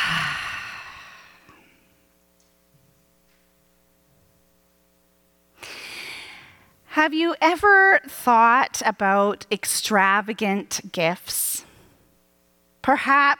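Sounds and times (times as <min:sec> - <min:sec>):
deep breath in: 0:00.0 - 0:01.9, 0:05.6 - 0:06.7
low steady hum: 0:00.0 - 0:13.3
speech: 0:07.0 - 0:11.7, 0:12.8 - 0:13.3.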